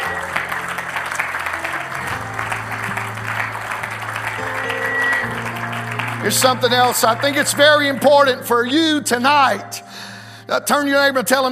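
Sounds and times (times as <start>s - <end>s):
audience applause: 0.0s - 8.4s
sustained low organ-like chords: 0.0s - 11.3s
speech: 6.2s - 11.5s.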